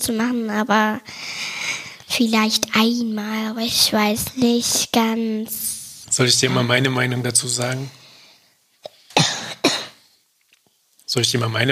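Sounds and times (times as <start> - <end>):
speech: 0.0 - 1.3, 2.2 - 8.0, 11.1 - 11.6
child coughing: 8.8 - 10.0.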